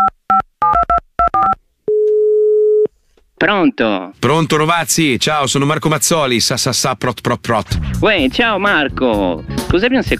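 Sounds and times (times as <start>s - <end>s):
telephone keypad beeps on an outgoing call: 0.0s - 2.9s
steady continuous telephone tone on an outgoing call: 1.4s - 2.9s
speech: 3.4s - 10.1s.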